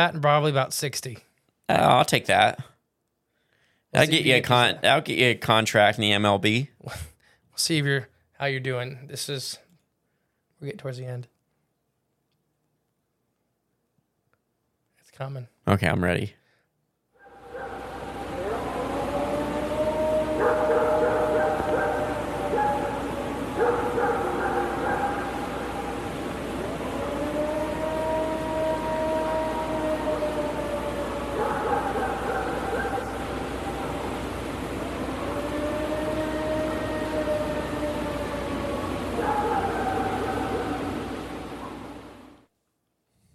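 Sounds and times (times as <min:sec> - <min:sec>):
speech: 0:00.0 - 0:02.7, 0:03.9 - 0:09.6, 0:10.6 - 0:11.3, 0:15.2 - 0:16.4
steady hiss: 0:00.0 - 0:43.3
long wavering howls of several voices: 0:17.2 - 0:42.5.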